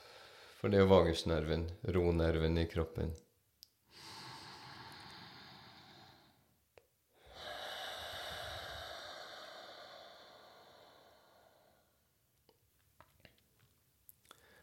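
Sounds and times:
speech: 0.6 - 3.3
deep breath drawn in through the nose: 3.9 - 6.6, 7.2 - 12.1
long steady exhale: 3.9 - 6.6, 7.2 - 12.1.

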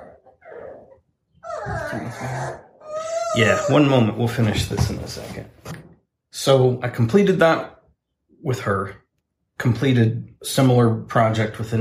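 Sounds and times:
dogs play-biting each other: 0.0 - 4.0
speech: 1.9 - 2.7, 3.4 - 5.8, 6.4 - 7.8, 8.4 - 9.0, 9.6 - 11.7.

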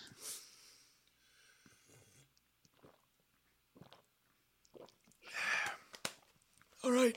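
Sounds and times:
person gulping water from a water bottle: 2.2 - 6.0.

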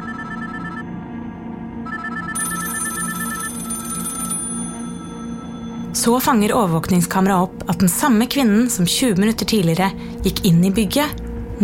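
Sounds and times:
several telephones ringing: 0.0 - 0.8, 1.8 - 6.0
speech: 6.0 - 11.6.

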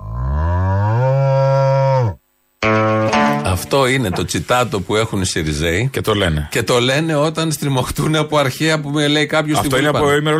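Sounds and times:
cow mooing: 0.0 - 2.2
speech: 3.6 - 10.3.

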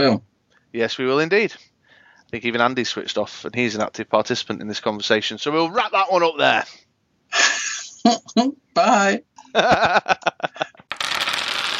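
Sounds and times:
speech: 0.0 - 1.7, 2.3 - 10.8
laughter: 9.5 - 10.8
someone rapidly thumbing through a stack of game cards: 10.9 - 11.7.

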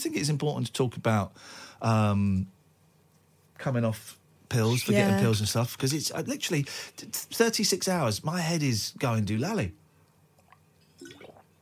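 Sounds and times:
speech: 0.0 - 2.6, 3.6 - 9.8
low hum: 0.0 - 11.6
cold water being sipped or poured: 10.4 - 11.6.

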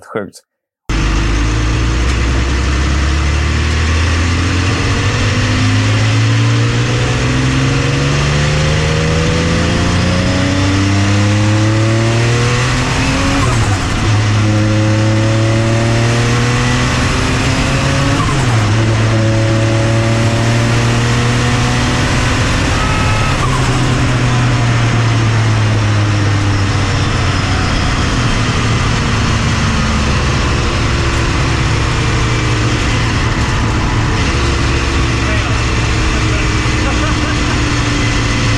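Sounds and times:
speech: 0.1 - 0.5
Porsche Le Mans race car engine accelerating: 0.9 - 38.5
faint tire squeal: 22.2 - 25.1, 26.0 - 29.0.

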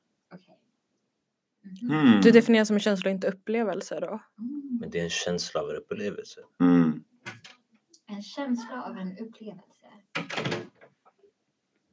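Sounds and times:
speech: 1.8 - 7.0, 8.2 - 10.8
door swinging open: 10.2 - 11.0.

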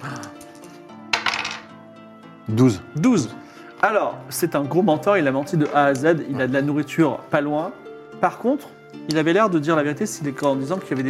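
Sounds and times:
dice clattering across a hard table surface: 0.2 - 1.7
speech: 2.5 - 11.0.

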